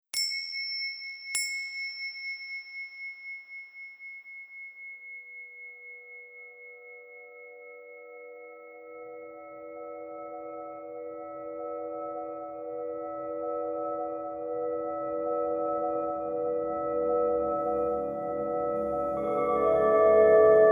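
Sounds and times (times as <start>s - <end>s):
crystal singing bowls: 0.2s - 20.7s
chakra chanting: 18.8s - 20.7s.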